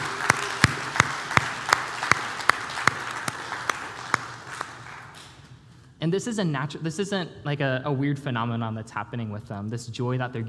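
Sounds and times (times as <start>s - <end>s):
audience applauding: 0.0s - 5.4s
sharp evenly spaced claps: 0.0s - 5.5s
speech: 6.0s - 10.4s.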